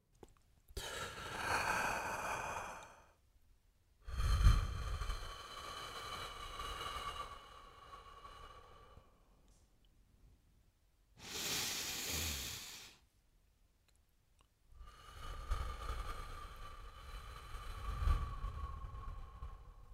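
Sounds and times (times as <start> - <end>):
slow deep breathing in and out: 0.8 - 3.2, 4.0 - 9.7, 11.2 - 13.0, 14.8 - 19.9.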